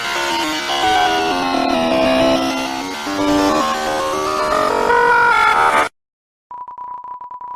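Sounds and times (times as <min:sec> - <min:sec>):
digital glitching: 0:00.1 - 0:05.8.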